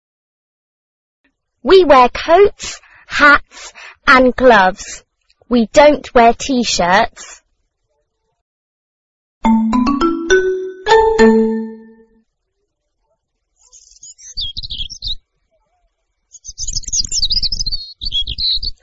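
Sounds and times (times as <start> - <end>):
speech: 1.6 - 7.4, 10.9 - 11.4
bright chime notes: 9.4 - 12.1
small birds singing in spring: 13.6 - 18.8.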